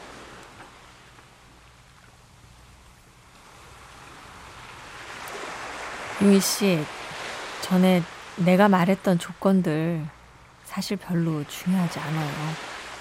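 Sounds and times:
ocean waves at the seashore: 0.0s - 12.9s
speech: 6.2s - 7.0s, 7.7s - 12.7s.

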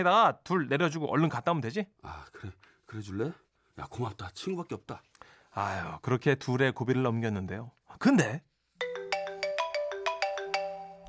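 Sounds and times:
speech: 0.0s - 8.9s
bright electronic phone ringtone for an incoming call: 8.8s - 11.0s.

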